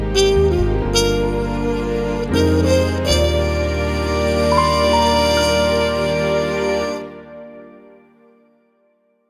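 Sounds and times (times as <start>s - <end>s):
muted trumpet: 0.1s - 7.2s.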